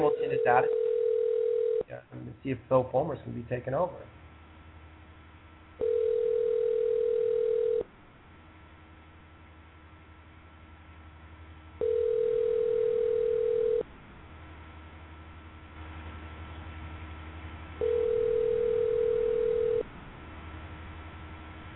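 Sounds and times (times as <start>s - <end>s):
long steady telephone line tones: 0.0s - 1.8s, 5.8s - 7.9s, 11.8s - 13.9s, 17.8s - 19.9s
low hum: 0.0s - 21.7s
speech: 0.4s - 0.8s, 1.9s - 4.2s.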